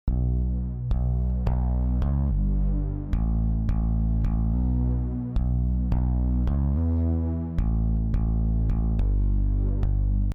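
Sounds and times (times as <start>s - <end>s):
processed bass synth: 0.0s - 10.3s.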